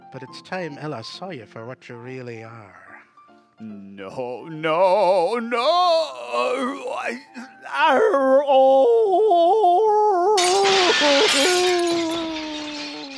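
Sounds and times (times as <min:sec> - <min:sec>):
speech: 0:00.1 - 0:02.8, 0:03.6 - 0:12.4
person wailing and moaning: 0:05.5 - 0:10.4
glass shattering: 0:10.4 - 0:13.1.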